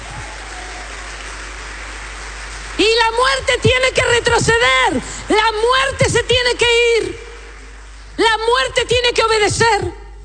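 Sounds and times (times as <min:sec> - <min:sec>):
crowd applauding: 0:00.0 - 0:08.2
speech: 0:03.1 - 0:07.2, 0:08.2 - 0:10.0.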